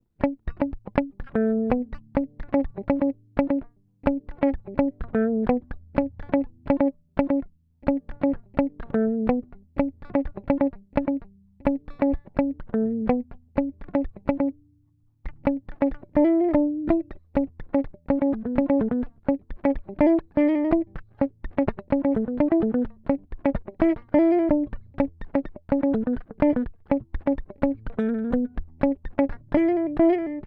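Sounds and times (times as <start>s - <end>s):
electric guitar in B minor at 126 bpm: 0.0s - 30.4s.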